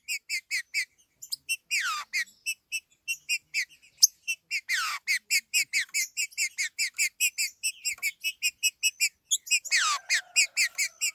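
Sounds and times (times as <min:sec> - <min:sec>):
green-winged saltator chirping: 0:00.0 - 0:11.1.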